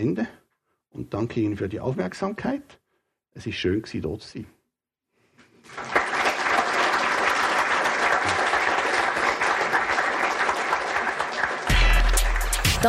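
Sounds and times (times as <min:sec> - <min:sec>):
speech: 0:00.0 - 0:02.8, 0:03.4 - 0:04.6
large audience applauding in a lecture hall after a lecture: 0:05.6 - 0:12.8.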